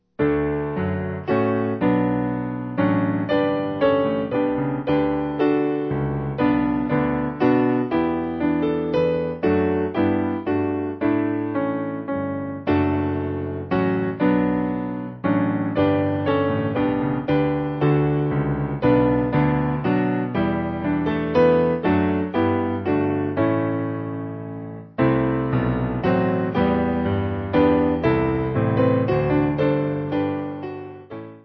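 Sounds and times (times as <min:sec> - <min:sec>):
piano: 0:00.0 - 0:31.4.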